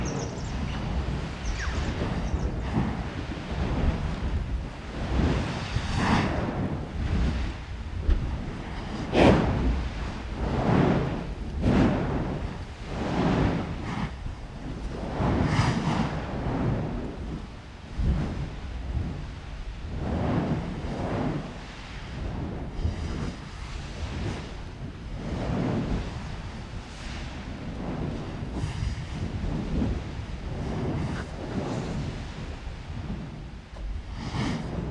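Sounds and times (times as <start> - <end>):
molten lava churning and splashing inside a volcano: 0.0 - 34.8.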